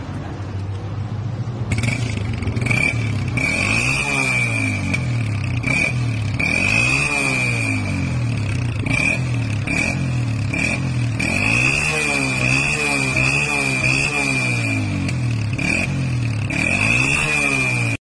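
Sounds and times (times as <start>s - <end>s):
Shirazi exhaust: 0.1s - 17.9s.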